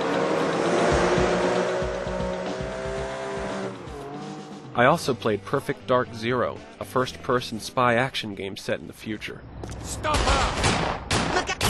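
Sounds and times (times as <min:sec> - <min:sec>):
racing car engine roaring: 0:00.0 - 0:04.8
rhythmic low thumps: 0:00.1 - 0:03.8
speech: 0:04.8 - 0:11.0.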